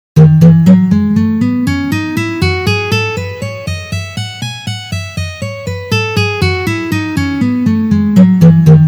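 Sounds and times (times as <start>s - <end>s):
E major scale in three notes per position: 0.2s - 8.8s.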